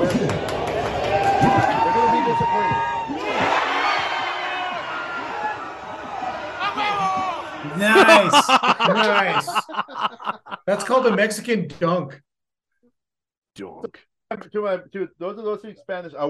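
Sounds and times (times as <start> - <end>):
crowd of sports fans shouting and roaring: 0.0 - 11.2
laughter: 5.9 - 11.6
speech: 8.2 - 12.3, 13.6 - 16.2.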